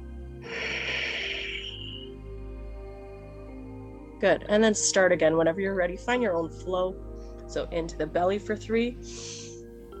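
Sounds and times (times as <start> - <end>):
low hum: 0.0 - 4.7
long breathy exhale in a guided breathing exercise: 0.4 - 3.3
speech: 4.2 - 9.4.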